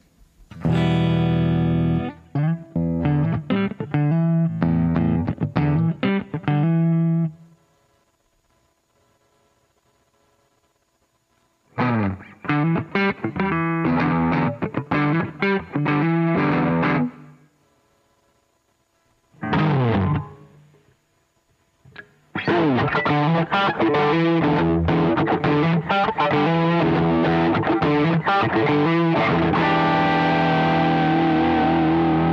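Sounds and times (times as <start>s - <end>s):
electric guitar playing picked phrase and crunchy distorted chords: 0.5s - 7.3s, 11.8s - 17.3s, 19.4s - 20.7s, 21.9s - 32.3s.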